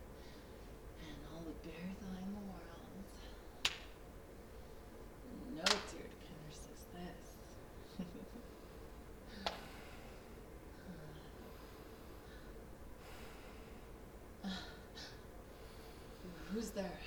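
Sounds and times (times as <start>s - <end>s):
steady low hiss: 0.0s - 17.0s
person breathing heavily with snorting exhales: 8.4s - 17.0s
speech: 16.7s - 17.0s.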